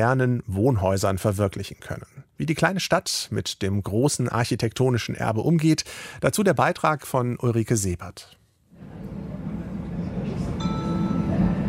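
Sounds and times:
speech: 0:00.0 - 0:09.2
moving train rumbling heard from inside the carriage: 0:08.8 - 0:11.6.

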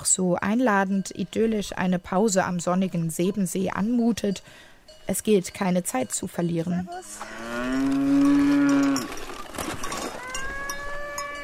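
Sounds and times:
speech: 0:00.2 - 0:08.5
cowbells clanking: 0:00.4 - 0:11.4
cow mooing on a mountain hiking trail: 0:06.9 - 0:09.2, 0:10.2 - 0:11.4.

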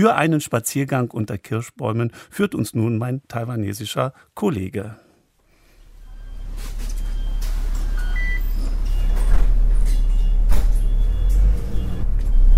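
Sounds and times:
speech: 0:00.0 - 0:05.0
bus from a metro station to a national park in Taipei rumbling: 0:06.0 - 0:12.5
short electronic beeps on a bus: 0:06.0 - 0:12.5
passing traffic in Taipei: 0:08.7 - 0:12.5.

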